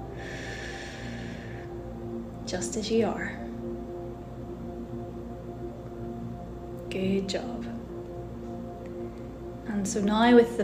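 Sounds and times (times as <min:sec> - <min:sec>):
slow exhale during a guided relaxation breathing exercise: 0:00.0 - 0:01.9
speech: 0:02.5 - 0:03.5, 0:07.0 - 0:07.7, 0:09.7 - 0:10.6.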